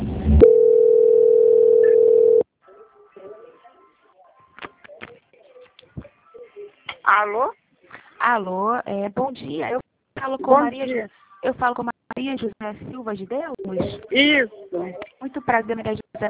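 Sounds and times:
steady single-pitched telephone line tone while a bank call is transferred: 0.4 - 2.4
speech: 8.3 - 16.2.

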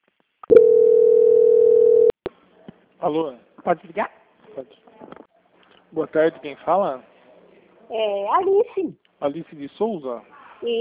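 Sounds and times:
steady single-pitch telephone tone during a bank call transfer: 0.5 - 2.2
speech: 3.0 - 5.1, 5.9 - 7.1, 7.9 - 10.7.

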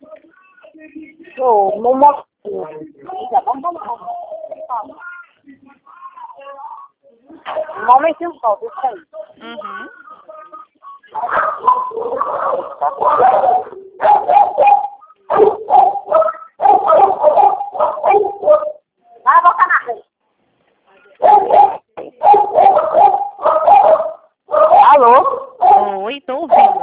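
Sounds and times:
speech: 1.4 - 5.1, 7.5 - 10.0, 11.2 - 14.4
dog barking and yipping: 11.1 - 18.8, 21.2 - 26.8.

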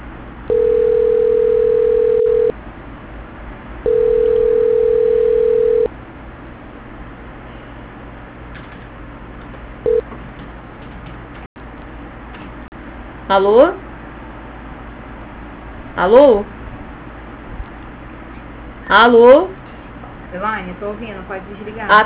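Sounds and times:
hissy narrow-band phone line noise: 0.5 - 2.5, 3.9 - 5.9
telephone transfer tones on a narrow-band phone line: 0.5 - 2.5, 3.9 - 5.9, 9.9 - 10.1
speech: 13.3 - 13.8, 16.0 - 16.5, 18.9 - 19.6, 20.3 - 22.0.

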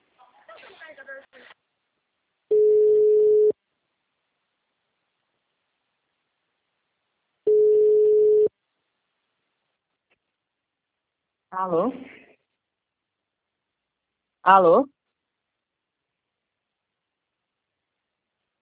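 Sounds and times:
telephone ringback tone on an outgoing call: 2.5 - 3.5, 7.5 - 8.5
speech: 11.6 - 12.2, 14.4 - 15.0.

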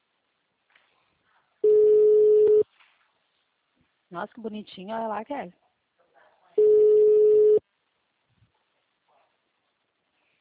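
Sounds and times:
telephone tone after a dropped call: 1.6 - 2.6, 6.6 - 7.6
speech: 4.1 - 5.6.

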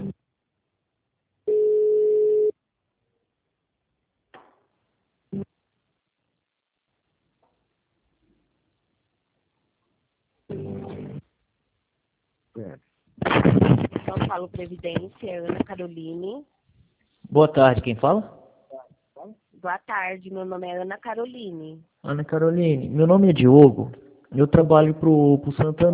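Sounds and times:
telephone line tone while a call is transferred: 1.5 - 2.5
speech: 14.4 - 16.6, 17.3 - 18.4, 19.3 - 25.9.

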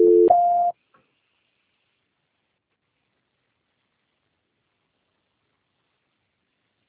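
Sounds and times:
telephone call transfer tone: 0.0 - 0.7.

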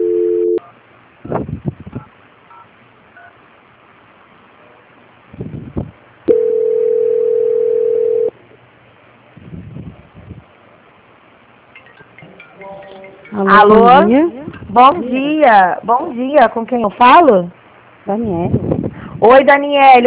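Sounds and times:
telephone tones during a call transfer: 0.0 - 0.7, 6.3 - 8.3
speech: 13.4 - 20.0.

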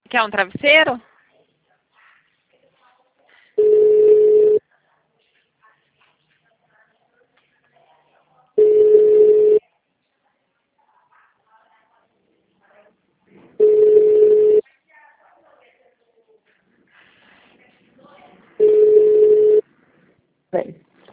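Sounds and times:
speech: 0.1 - 1.1, 20.5 - 20.8
telephone line ringback tone: 3.6 - 4.6, 8.6 - 9.6, 13.6 - 14.6, 18.6 - 19.6.

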